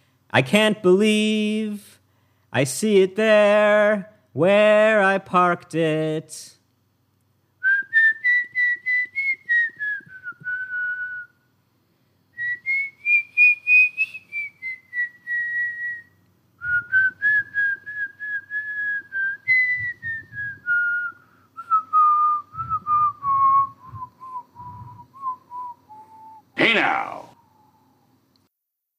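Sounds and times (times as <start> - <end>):
soft low noise: 0.0 - 28.5
speech: 0.4 - 6.6
person whistling a song's outro melody: 7.6 - 11.4, 12.4 - 27.7.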